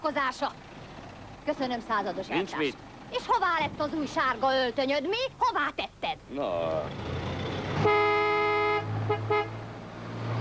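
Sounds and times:
speech: 0.0 - 0.7, 1.5 - 7.2, 7.8 - 8.1
low engine rumble from traffic: 0.0 - 10.3
car horn honking: 7.8 - 9.7.

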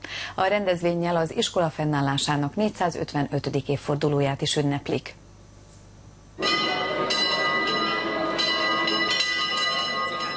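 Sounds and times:
speech: 0.4 - 5.2
large centuries-old school bell ringing at the Bolyai Farkas Lyceum: 6.4 - 10.3.

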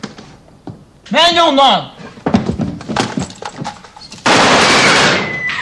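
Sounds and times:
speech: 1.1 - 2.0
gunshots being fired: 4.2 - 5.4.

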